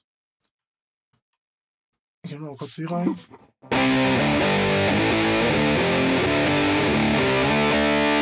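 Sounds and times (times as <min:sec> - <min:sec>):
speech: 0:02.3 - 0:06.4
distorted amp tone through speaker cabinet with new DSP modelling: 0:03.7 - 0:08.2.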